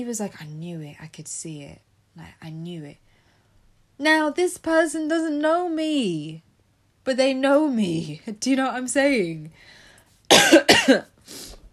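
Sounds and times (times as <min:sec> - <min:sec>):
speech: 0:00.0 - 0:03.1, 0:04.0 - 0:06.5, 0:07.1 - 0:11.5
person coughing: 0:10.3 - 0:11.2.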